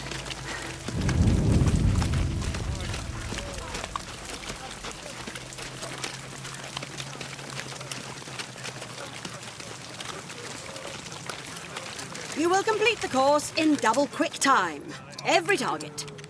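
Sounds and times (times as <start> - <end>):
deep rumbling gunfire blast on a firing range: 0.7 - 5.8
steady low hum: 0.8 - 5.8
speech: 12.6 - 16.1.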